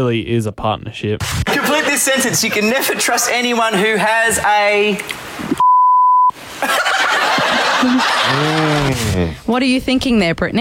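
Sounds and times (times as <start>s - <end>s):
speech: 0.0s - 5.4s, 6.6s - 10.5s
laughter: 1.4s - 4.0s, 6.6s - 9.4s
loud steady censor bleep tone: 5.6s - 6.3s.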